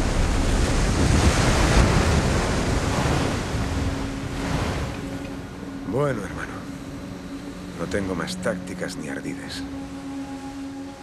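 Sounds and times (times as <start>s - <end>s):
ship ploughing through ocean waves: 0.0s - 5.3s
wind noise: 0.0s - 5.6s
speech: 6.0s - 6.4s, 7.8s - 10.0s.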